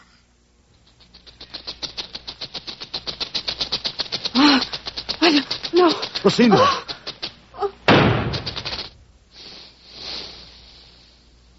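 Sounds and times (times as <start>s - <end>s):
soft lingering hiss: 0.0s - 11.5s
speech: 6.2s - 6.8s
gunshot: 7.9s - 8.8s.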